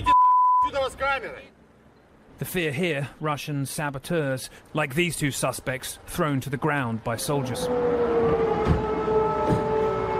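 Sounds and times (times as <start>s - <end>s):
speech: 0.8s - 1.6s, 2.4s - 8.8s
air raid siren: 7.4s - 10.1s.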